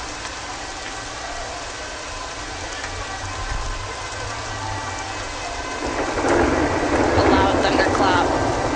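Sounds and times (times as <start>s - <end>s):
rain falling during a thunderstorm: 0.0s - 8.7s
low thunder rumbling: 2.6s - 8.7s.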